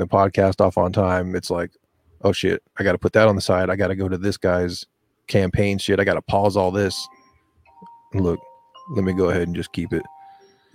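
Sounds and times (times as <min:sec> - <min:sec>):
speech: 0:00.0 - 0:07.2, 0:08.1 - 0:10.2
thin steady electronic alarm tone: 0:06.6 - 0:10.7.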